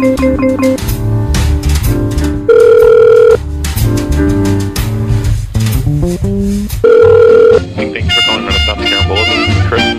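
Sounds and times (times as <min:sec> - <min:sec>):
busy music: 0:00.0 - 0:09.9
telephone ringback tone on a call: 0:02.5 - 0:03.4, 0:06.8 - 0:07.7.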